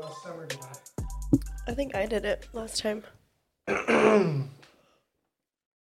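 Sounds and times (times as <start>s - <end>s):
speech: 1.3s - 4.6s
voiced yawn: 3.7s - 4.6s.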